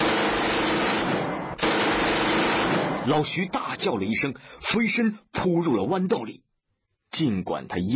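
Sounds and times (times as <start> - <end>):
two submachine guns firing at once: 0.0 - 3.3
speech: 3.1 - 6.4, 7.1 - 7.9.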